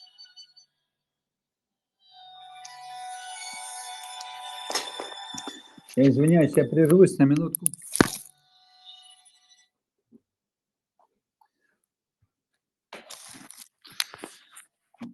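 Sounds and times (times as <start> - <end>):
phone electronic ringtone: 2.2 - 7.7
speech: 5.5 - 7.8.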